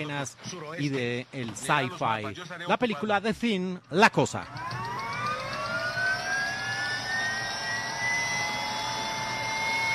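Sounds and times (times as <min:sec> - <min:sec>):
speech: 0:00.0 - 0:04.8
helicopter engine winding up for takeoff: 0:04.2 - 0:09.9
helicopter turbine whine climbing in pitch: 0:04.4 - 0:09.9.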